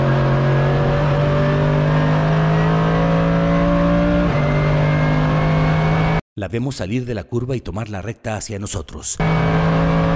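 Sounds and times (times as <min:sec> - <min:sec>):
eight-cylinder car engine revving through a six-speed gearbox: 0:00.0 - 0:06.2, 0:09.2 - 0:10.1
speech: 0:06.4 - 0:10.1.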